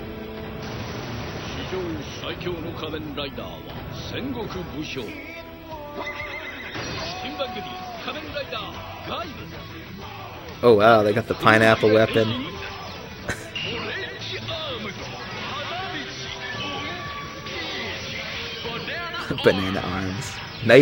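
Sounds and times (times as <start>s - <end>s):
speech: 1.7s - 5.4s, 6.0s - 6.3s, 7.4s - 12.5s, 19.4s - 20.7s
laughter: 4.4s - 20.7s
horse with a rider neighing and whinnying: 5.2s - 7.2s.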